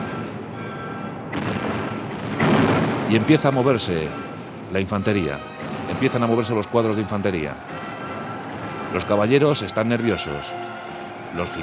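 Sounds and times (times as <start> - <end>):
heavy cannon blasts: 1.3 - 4.7
speech: 3.1 - 7.8, 8.9 - 11.6.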